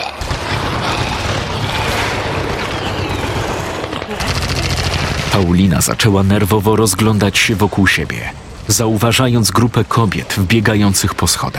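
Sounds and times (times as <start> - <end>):
gunfire bursts: 0.0 - 6.2
speech: 5.4 - 11.5.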